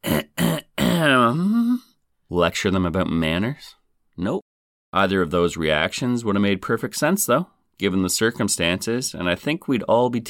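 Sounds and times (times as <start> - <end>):
loud throat clearing: 0.0 - 1.9
speech: 2.3 - 10.2.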